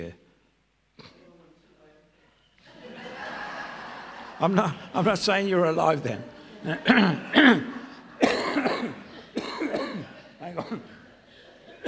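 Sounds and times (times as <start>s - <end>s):
speech: 0.0s - 0.2s, 4.4s - 7.8s, 10.5s - 11.0s
laughter: 2.6s - 9.4s
person coughing: 8.2s - 11.0s, 11.6s - 11.8s.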